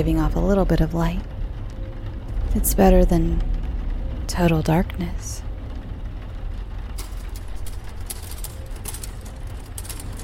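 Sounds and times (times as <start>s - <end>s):
speech: 0.0s - 1.3s, 2.5s - 3.5s, 4.3s - 5.5s
low steady droning hum: 0.0s - 10.2s
typewriter keys clacking: 7.0s - 10.2s.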